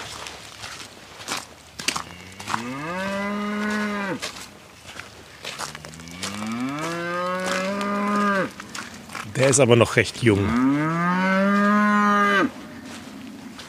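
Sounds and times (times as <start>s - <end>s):
faint shuffling footsteps: 0.0s - 13.6s
cow mooing in freezing winter weather: 2.0s - 4.2s, 5.7s - 9.2s, 10.4s - 13.6s
speech: 2.6s - 3.1s, 9.4s - 11.0s.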